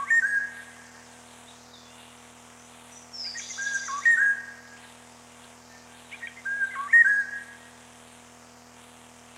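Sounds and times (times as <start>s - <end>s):
Eurasian golden oriole singing fluty whistled phrases: 0.0s - 0.7s, 3.2s - 4.6s, 6.1s - 7.6s
faint steady hum: 0.0s - 9.3s.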